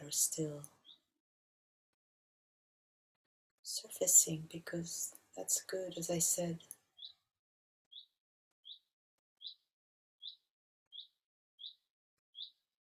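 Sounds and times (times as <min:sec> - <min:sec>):
speech: 0:00.1 - 0:00.8, 0:03.8 - 0:06.8
single bird chirping: 0:00.7 - 0:01.1, 0:06.9 - 0:07.3, 0:07.9 - 0:08.8, 0:09.4 - 0:09.6, 0:10.2 - 0:12.6.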